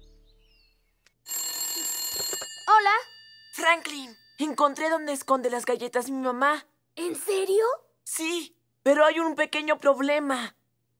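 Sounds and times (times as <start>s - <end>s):
telephone ringing: 1.2s - 5.5s
speech: 2.8s - 10.6s.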